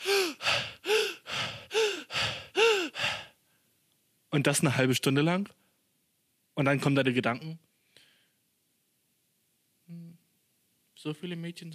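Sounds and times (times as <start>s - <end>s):
voice imitating heavy panting of someone running: 0.0s - 3.3s
speech: 4.3s - 5.6s, 6.6s - 7.7s, 11.0s - 11.7s.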